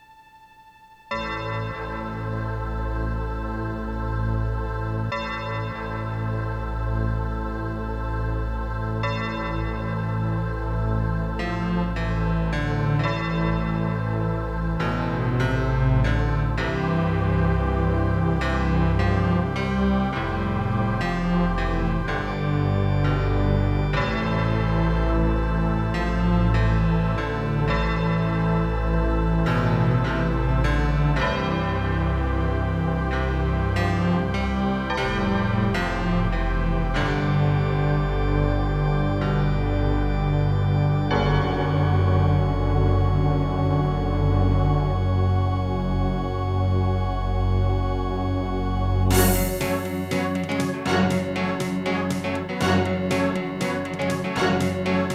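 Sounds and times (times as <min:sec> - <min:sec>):
General MIDI music on an Orchid NuSound PnP 32 sound card: 0:00.0 - 0:55.1.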